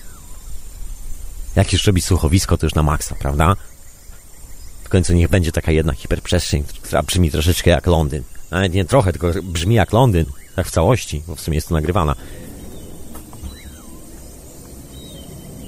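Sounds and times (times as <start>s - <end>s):
faint brief bird chirps in London: 0.0s - 15.6s
low rumble of city traffic in London: 0.0s - 15.6s
speech: 1.6s - 3.7s, 4.9s - 12.4s
faint whistling tone: 12.2s - 15.6s.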